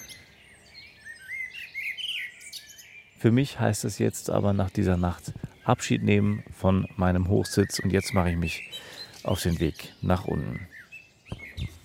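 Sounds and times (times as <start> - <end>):
many birds singing in a forest at dawn: 0.0 - 11.8
speech: 3.2 - 10.7.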